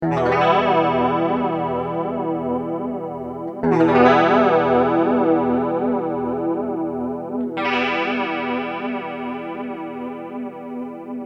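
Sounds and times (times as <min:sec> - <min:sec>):
clean electric guitar with jet flanger effect: 0:00.0 - 0:11.2.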